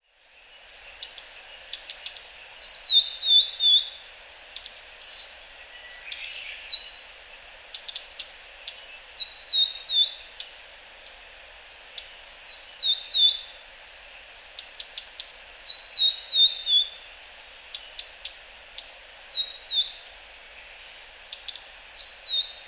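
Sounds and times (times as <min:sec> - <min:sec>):
blue-and-white flycatcher calling in Hyogo: 0:00.9 - 0:07.0, 0:07.7 - 0:10.6, 0:12.0 - 0:13.6, 0:14.6 - 0:17.1, 0:17.7 - 0:22.6.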